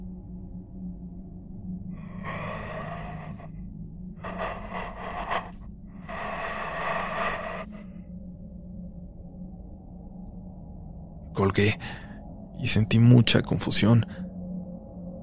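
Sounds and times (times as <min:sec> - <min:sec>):
slow heavy rasping breaths: 0:02.0 - 0:03.6, 0:04.2 - 0:08.1
speech: 0:11.4 - 0:14.2.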